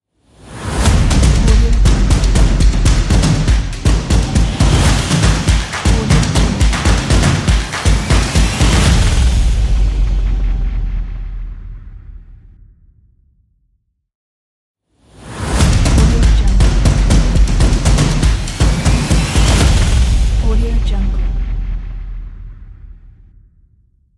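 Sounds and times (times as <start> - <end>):
drums: 0.7 - 12.4, 15.4 - 22.8.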